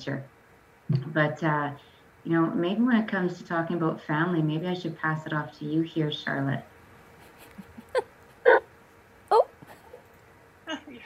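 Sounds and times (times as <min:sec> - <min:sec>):
speech: 0:00.0 - 0:06.7
dog whimpering: 0:07.5 - 0:08.7, 0:09.3 - 0:10.0.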